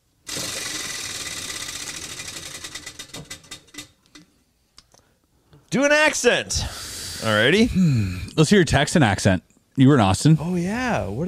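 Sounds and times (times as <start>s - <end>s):
prize wheel spinning and clicking: 0.3s - 4.2s
speech: 5.7s - 11.2s.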